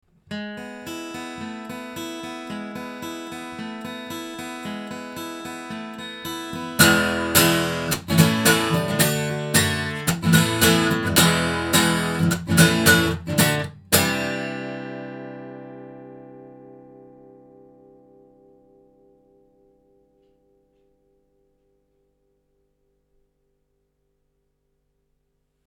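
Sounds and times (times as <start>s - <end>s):
guitar recorded with omni microphone: 0.3s - 20.3s.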